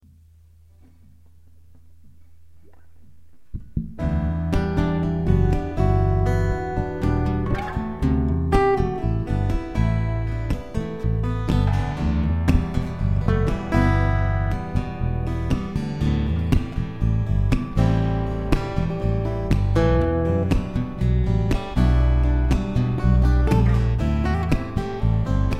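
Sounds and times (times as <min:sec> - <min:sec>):
acoustic jam in E minor: 0:00.6 - 0:25.5.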